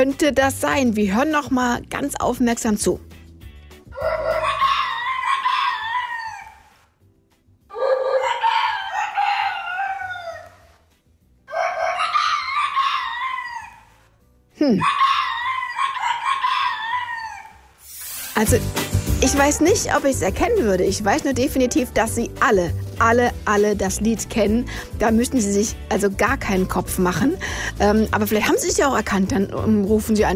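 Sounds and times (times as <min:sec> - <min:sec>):
speech: 0:00.0 - 0:03.2, 0:18.4 - 0:30.3
rooster crowing: 0:04.0 - 0:06.8, 0:07.7 - 0:10.8, 0:11.5 - 0:14.0, 0:14.8 - 0:17.7.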